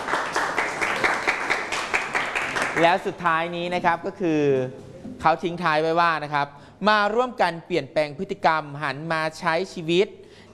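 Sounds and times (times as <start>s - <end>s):
group clapping for a friend after a presentation: 0.0s - 3.1s
speech: 2.8s - 10.2s.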